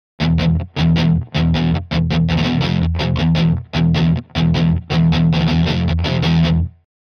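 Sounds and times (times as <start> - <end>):
slow heavy metal guitar rhythm: 0.2 - 6.8.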